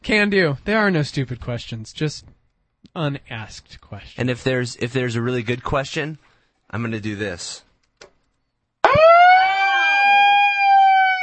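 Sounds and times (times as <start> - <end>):
speech: 0.1 - 7.7
loud piercing siren wailing: 8.8 - 11.2.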